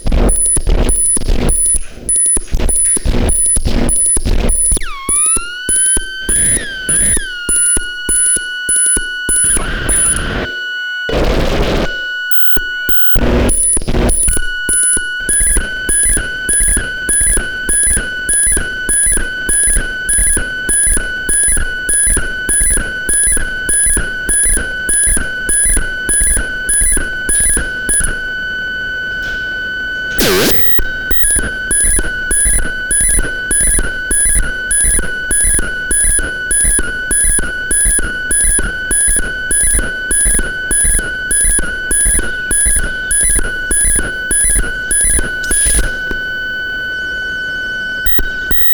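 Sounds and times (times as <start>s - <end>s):
audio feedback: 0.0s - 48.7s.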